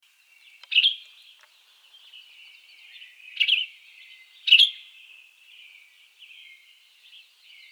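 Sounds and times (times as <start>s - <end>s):
Western Tanager Piranga ludoviciana calling: 0.2s - 5.3s.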